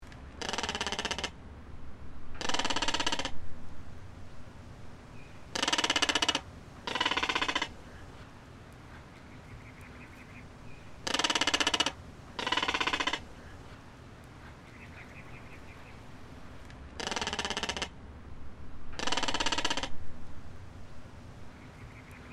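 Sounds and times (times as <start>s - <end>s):
caracara call: 0.4s - 1.4s, 2.3s - 3.4s, 5.4s - 8.3s, 8.9s - 16.0s, 17.0s - 18.0s, 18.9s - 20.0s.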